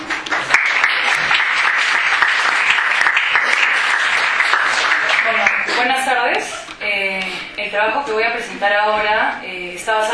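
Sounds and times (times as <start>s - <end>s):
room full of people applauding: 0.0s - 6.1s
speech: 7.7s - 10.1s.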